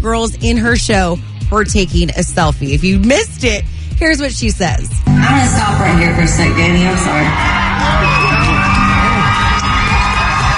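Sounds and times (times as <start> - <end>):
speech: 0.0 - 8.4
concert crowd cheering and whooping: 5.1 - 10.5
people shouting and yelling in a crowd: 6.3 - 10.5.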